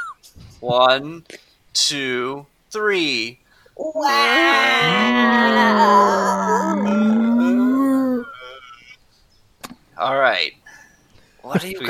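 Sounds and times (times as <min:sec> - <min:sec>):
speech: 0:00.6 - 0:07.2, 0:10.0 - 0:10.6, 0:11.5 - 0:11.8
several voices imitating a whale call with a droning moan: 0:04.0 - 0:08.9
laughter: 0:11.5 - 0:11.8.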